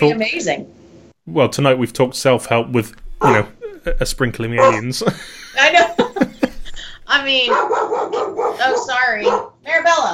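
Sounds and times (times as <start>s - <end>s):
speech: 0.0s - 6.3s, 7.1s - 10.1s
dog barking: 3.2s - 3.5s, 4.6s - 4.9s, 7.4s - 9.6s
laughter: 3.2s - 7.1s.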